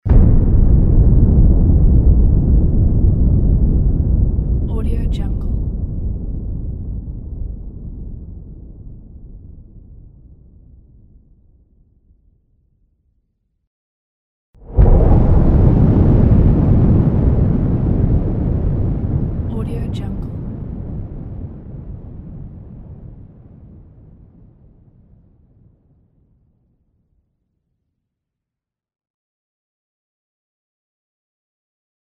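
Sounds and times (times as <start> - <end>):
big explosion: 0.0 - 10.8, 14.6 - 25.2.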